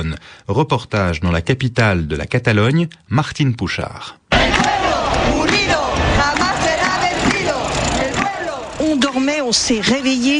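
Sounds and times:
speech: 0.0s - 4.2s, 9.5s - 10.3s
large crowd of protesters chanting slogans in unison at a peaceful march: 4.3s - 10.3s
traffic rumbling faintly: 4.5s - 10.3s.

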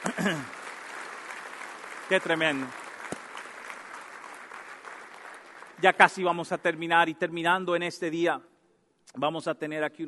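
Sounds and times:
speech: 0.0s - 0.6s, 2.1s - 2.8s, 5.8s - 8.5s, 9.1s - 10.0s
church congregation applauding: 0.0s - 6.9s.

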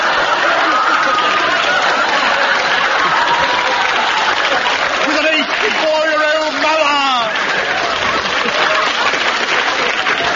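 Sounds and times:
laughter: 0.0s - 10.3s
sizeable audience applauding: 0.0s - 10.3s.

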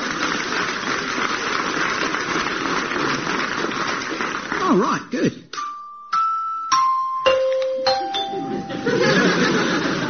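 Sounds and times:
rising wash of noise: 0.0s - 10.0s
speech: 4.8s - 5.4s
doorbell chime playing a descending melody of ringing tones: 5.6s - 9.5s
laughter: 8.3s - 10.0s.

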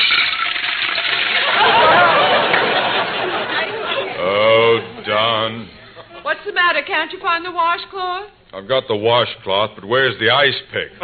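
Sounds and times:
water poured from a pitcher into a bowl: 0.0s - 1.5s
laughter: 1.3s - 6.4s
speech: 6.8s - 11.0s.

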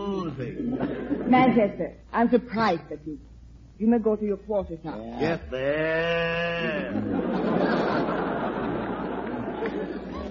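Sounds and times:
speech: 0.4s - 7.8s
man mooing imitating a cow: 5.2s - 7.1s
crowd laughter: 6.8s - 10.3s.

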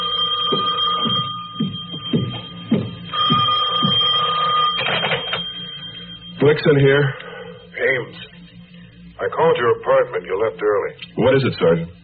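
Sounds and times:
old-style telephone bell ringing: 0.0s - 7.5s
speech: 6.4s - 7.2s, 9.2s - 12.0s.

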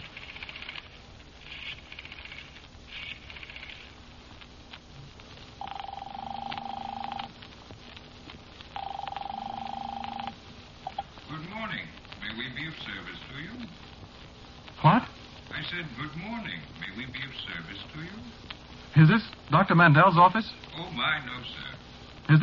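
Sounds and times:
phone number dialed in short buzzy bursts: 5.6s - 7.3s, 8.7s - 11.1s
speech: 15.7s - 21.6s.

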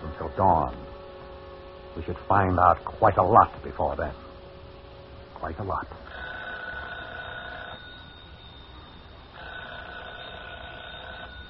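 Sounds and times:
speech: 0.4s - 0.9s, 2.0s - 4.2s, 5.4s - 6.1s
telephone ringing: 6.1s - 11.4s.

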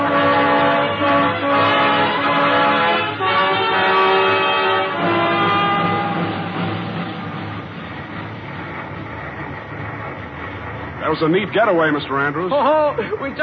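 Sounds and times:
steam locomotive starting and running: 0.0s - 13.4s
speech: 11.2s - 13.4s.

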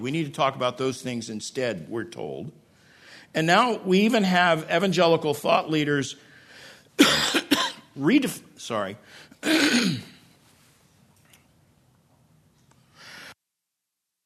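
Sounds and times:
speech: 0.0s - 2.6s, 3.2s - 6.3s, 7.0s - 7.4s, 8.0s - 10.1s
faint breath: 2.7s - 3.3s, 6.2s - 7.0s, 12.8s - 13.4s
person coughing and clearing throat: 7.0s - 7.9s, 9.4s - 10.2s.

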